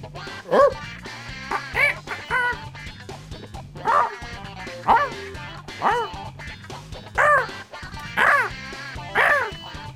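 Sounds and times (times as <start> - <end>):
person imitating a dog barking: 0.2 - 2.7, 3.8 - 6.3, 7.1 - 9.8.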